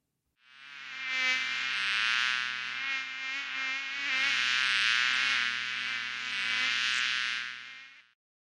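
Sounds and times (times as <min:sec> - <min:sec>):
fly buzzing: 0:00.4 - 0:08.2.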